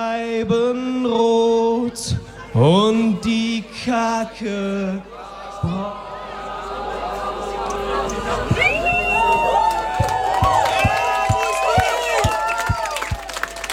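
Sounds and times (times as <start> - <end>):
speech: 0.0 - 6.1
large crowd singing together loudly off-key: 0.0 - 11.1
steady low thump of stomping or clapping: 9.9 - 13.2.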